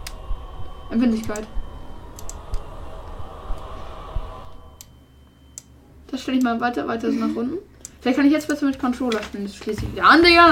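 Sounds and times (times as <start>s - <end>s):
low steady hum: 0.0s - 10.5s
speech: 0.9s - 1.6s, 6.2s - 10.5s
computer mouse clicking while adjusting horror game settings: 1.2s - 1.5s, 2.1s - 3.7s, 7.8s - 9.4s.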